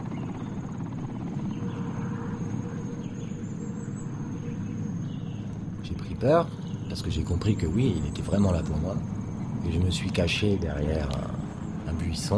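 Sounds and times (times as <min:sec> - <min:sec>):
faint high whine of helicopter: 0:00.0 - 0:12.3
helicopter circling overhead with throbbing rotor drone: 0:00.0 - 0:12.3
speech: 0:05.9 - 0:12.3.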